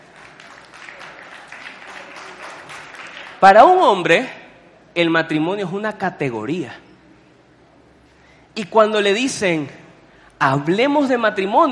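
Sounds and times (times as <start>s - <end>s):
crowd applause: 0.0s - 3.4s
speech: 3.4s - 4.4s, 5.0s - 6.8s, 8.6s - 9.8s, 10.4s - 11.7s.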